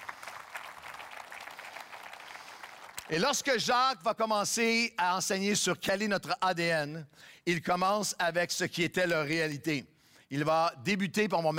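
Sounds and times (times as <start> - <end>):
church congregation applauding: 0.0 - 3.7
speech: 3.1 - 11.5.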